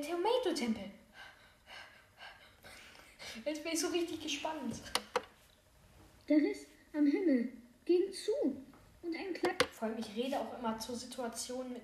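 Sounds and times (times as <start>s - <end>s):
speech: 0.0s - 1.0s, 3.4s - 5.1s, 6.3s - 11.8s
soft airy breathing: 1.1s - 3.5s.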